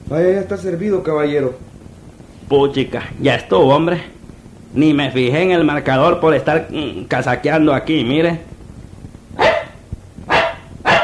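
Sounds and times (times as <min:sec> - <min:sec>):
speech: 0:00.1 - 0:01.7, 0:02.5 - 0:08.5
dog barking in car back seat: 0:09.4 - 0:11.0.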